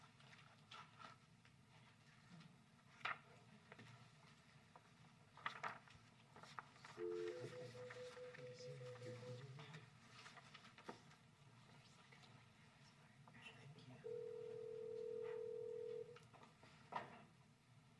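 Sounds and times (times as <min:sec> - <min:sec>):
faint room noise: 0:00.0 - 0:17.9
steady telephone dial tone: 0:07.0 - 0:09.4, 0:14.0 - 0:16.2.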